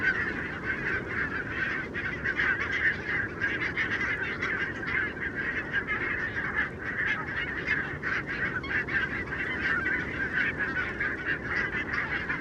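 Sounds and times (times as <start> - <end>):
massive flock of barnacle geese yapping on wintering grounds in Renesse, Netherlands: 0.0 - 12.3.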